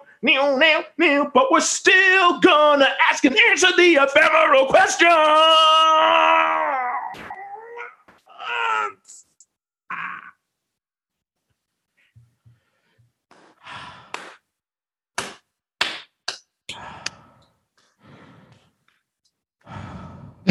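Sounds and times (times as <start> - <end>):
speech: 0.2 - 7.3
exaggerated heavy breathing: 12.0 - 14.2, 16.7 - 18.9, 19.6 - 20.4.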